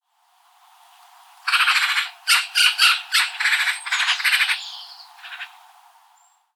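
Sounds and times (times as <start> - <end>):
Eurasian magpie Pica pica chattering: 1.5 - 5.5.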